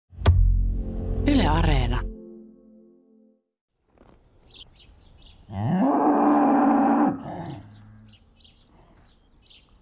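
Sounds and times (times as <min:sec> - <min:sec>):
speech: 0:01.2 - 0:02.1, 0:05.5 - 0:06.0
small birds chirping in a spring forest: 0:04.0 - 0:06.6, 0:07.2 - 0:09.8
cow mooing in a spring forest: 0:05.5 - 0:08.2.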